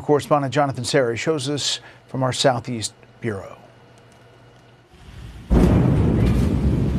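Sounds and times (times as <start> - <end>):
speech: 0.0 - 3.6
rocket exploding during engine test: 5.0 - 6.9
thunderous roar and rumble: 5.5 - 6.9.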